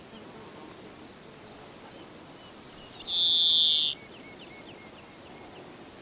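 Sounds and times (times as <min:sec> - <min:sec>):
faint background hiss: 0:00.0 - 0:06.0
European greenfinch Chloris chloris call: 0:02.9 - 0:04.0.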